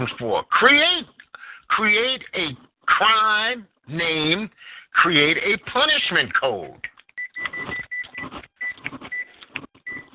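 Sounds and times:
speech: 0.0s - 7.8s
short electronic tones of a kitchen appliance: 7.2s - 9.3s, 9.9s - 10.1s.

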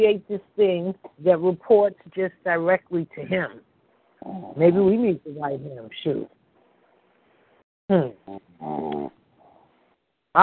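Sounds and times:
speech: 0.0s - 6.4s, 7.9s - 9.2s
person snoring on a call: 8.0s - 9.1s.

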